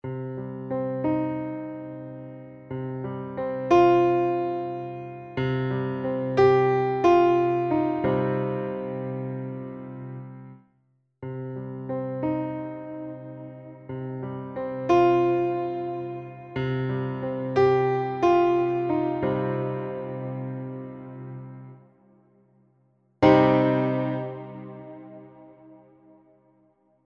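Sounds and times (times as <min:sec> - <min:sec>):
mini grand piano with reverb: 0:00.0 - 0:10.6, 0:11.2 - 0:21.8, 0:23.2 - 0:26.0.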